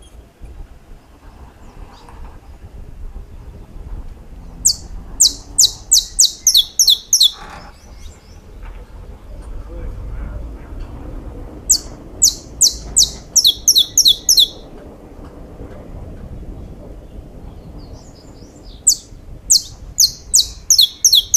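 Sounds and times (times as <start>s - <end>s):
steady low rumble: 0.0s - 21.3s
saffron finch song: 4.5s - 9.8s, 11.7s - 14.8s, 17.0s - 21.3s.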